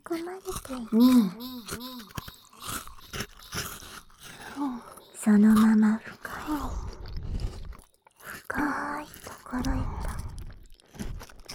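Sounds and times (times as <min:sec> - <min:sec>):
crunching and chewing food: 0:00.0 - 0:11.5
speech: 0:00.1 - 0:01.9, 0:05.3 - 0:06.1.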